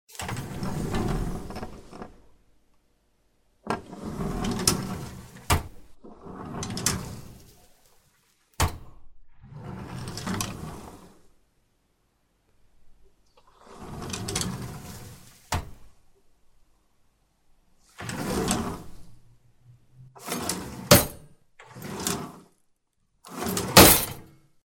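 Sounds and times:
opening and closing variants: 0.1 - 2.4, 3.6 - 8.0, 8.6 - 11.3, 13.3 - 16.0, 17.8 - 19.2, 20.2 - 22.5, 23.2 - 24.3.

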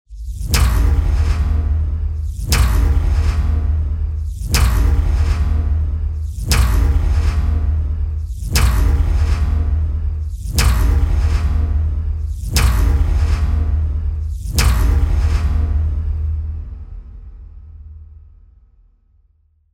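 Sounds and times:
strikes on metal with trembling rattle: 0.4 - 16.1.

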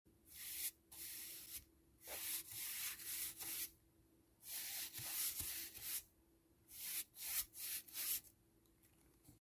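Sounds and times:
small stiff painter's brush on a board: 0.3 - 3.8, 4.4 - 6.1, 6.7 - 8.3.

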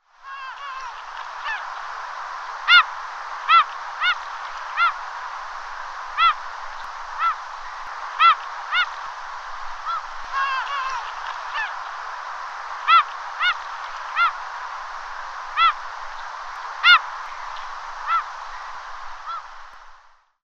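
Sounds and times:
sea: 0.0 - 20.4
seagull screeching: 0.3 - 1.7, 2.7 - 2.9, 3.5 - 5.0, 6.2 - 6.4, 7.2 - 7.4, 8.2 - 9.0, 9.8 - 11.8, 12.8 - 14.4, 15.6 - 15.8, 16.8 - 17.1, 18.0 - 18.3, 19.2 - 19.5.

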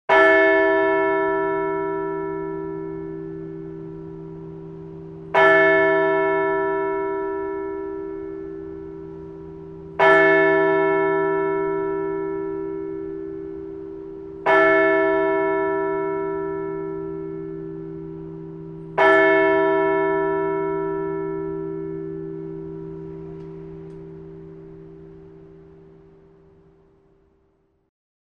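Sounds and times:
strikes of a large bell: 0.1 - 27.0.

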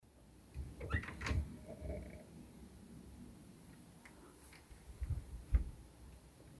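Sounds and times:
wardrobe door with soft-close damper closing: 0.6 - 1.6.

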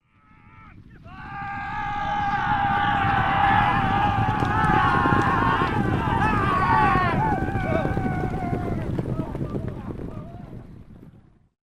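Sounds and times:
horses galloping past: 0.2 - 11.5
riders shouting: 0.4 - 9.0.

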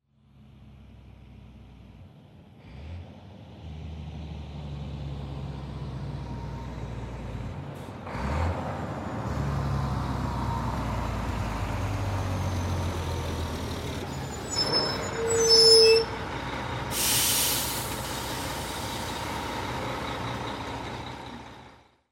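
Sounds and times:
large diesel vehicle arriving and stopping: 0.2 - 22.1
brake pads squealing on a large diesel vehicle: 11.9 - 21.5.

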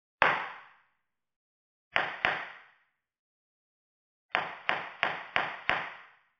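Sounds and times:
judge's gavel striking in a courtroom: 2.0 - 2.6, 4.4 - 6.1.

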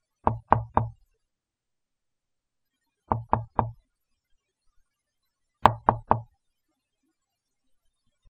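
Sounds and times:
knocking on a door: 0.3 - 1.0, 3.1 - 3.8, 5.6 - 6.3.

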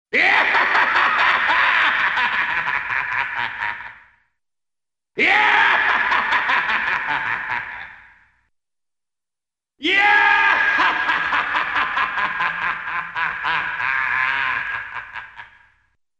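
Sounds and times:
cinematic laughter of a madman: 0.2 - 4.1, 5.2 - 8.2, 9.9 - 15.8.

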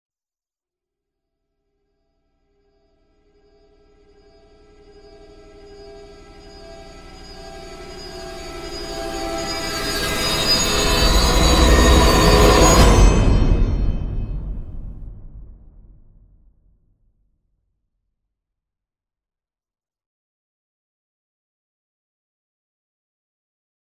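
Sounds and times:
falling suspense sound: 6.3 - 16.2.

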